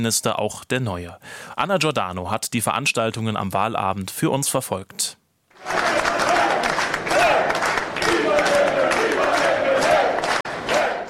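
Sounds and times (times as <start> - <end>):
speech: 0.0 - 5.8
large crowd cheering at a vote counting centre in Malta: 5.5 - 11.0
people clapping: 5.5 - 11.0.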